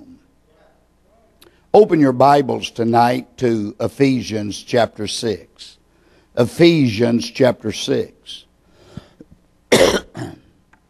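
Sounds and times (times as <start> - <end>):
speech: 1.8 - 5.8, 6.4 - 8.5
hoarse person with a persistent cough coughing: 9.7 - 10.5.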